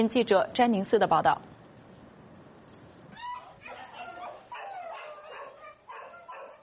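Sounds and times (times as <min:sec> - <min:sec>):
speech: 0:00.0 - 0:01.5
abandoned dogs barking in an animal shelter in Taiwan: 0:03.2 - 0:06.6.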